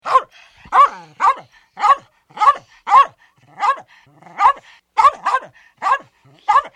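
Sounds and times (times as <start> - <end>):
small dog barking sharply: 0.0 - 3.8, 4.4 - 6.7
small dog growling: 0.6 - 1.4, 3.4 - 4.5.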